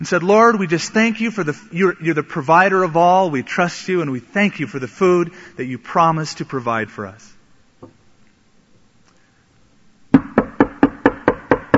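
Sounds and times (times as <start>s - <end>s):
speech: 0.0s - 7.3s
sharp solid knocks on a door: 10.2s - 11.7s.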